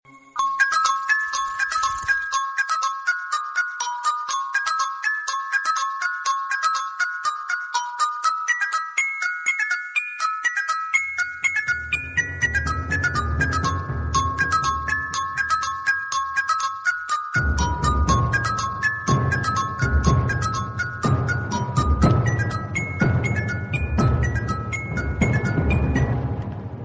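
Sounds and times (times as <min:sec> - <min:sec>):
clock ringtone: 0:00.1 - 0:26.4.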